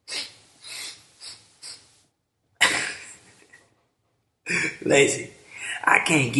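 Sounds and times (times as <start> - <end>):
person snorting a line of powder through the nose: 0.0 - 1.9
quick sharp nasal sniffs: 0.0 - 2.0
speech: 4.5 - 6.3.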